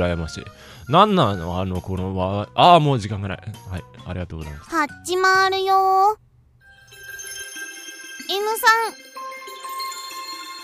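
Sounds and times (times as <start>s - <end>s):
speech: 0.0s - 6.3s, 8.3s - 9.1s
telephone ringing with a bright electronic tone: 6.8s - 10.6s.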